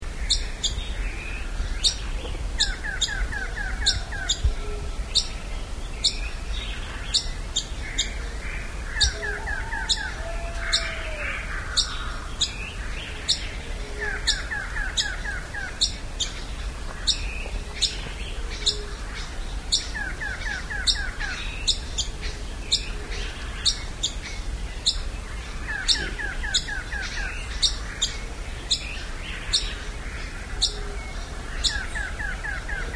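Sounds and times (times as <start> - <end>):
Mottled-cheeked tyrannulet Phylloscartes ventralis singing: 0.0 - 32.9.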